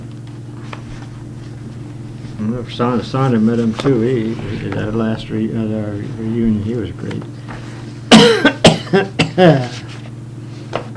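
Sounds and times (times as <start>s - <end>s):
speech: 2.4s - 7.7s, 8.9s - 9.8s
harsh fit of coughing: 8.1s - 9.7s.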